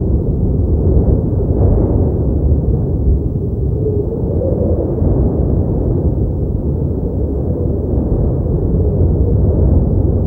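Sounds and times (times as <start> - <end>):
cold wind: 0.0 - 10.2.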